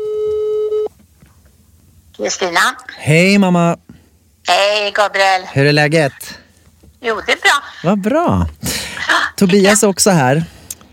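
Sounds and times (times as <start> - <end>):
electronic telephone ringback tone while placing a phone call: 0.0 - 0.9
speech: 2.2 - 3.8, 4.4 - 6.4, 7.0 - 8.5, 9.1 - 10.6.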